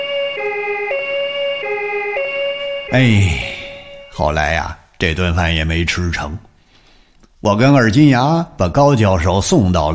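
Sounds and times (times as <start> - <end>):
ambulance siren two-tone hi-lo wail: 0.0 - 4.2
speech: 2.9 - 3.5, 4.2 - 6.5, 7.4 - 9.9.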